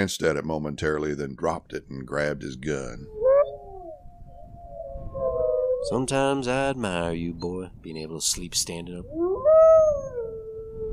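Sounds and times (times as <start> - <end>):
speech: 0.0 - 3.2, 5.8 - 9.3
several coyotes howling: 3.0 - 6.4, 9.1 - 10.9.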